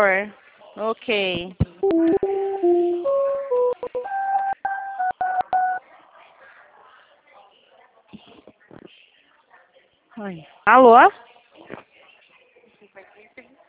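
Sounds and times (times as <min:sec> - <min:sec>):
speech: 0:00.0 - 0:02.2, 0:10.2 - 0:11.8
telephone keypad tones redialing a dropped call: 0:01.8 - 0:05.8.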